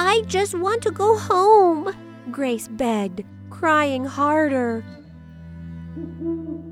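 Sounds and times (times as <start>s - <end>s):
humming drone: 0.0s - 6.7s
speech: 0.2s - 5.0s
owl hooting: 5.9s - 6.7s.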